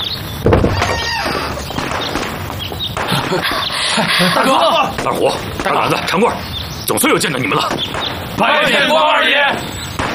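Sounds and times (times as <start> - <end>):
hiss: 0.0 - 10.1
speech: 0.4 - 0.9, 3.3 - 9.7
heavy door creaking and scraping as it swings: 0.5 - 1.9
laughter: 0.8 - 1.9, 3.0 - 6.1.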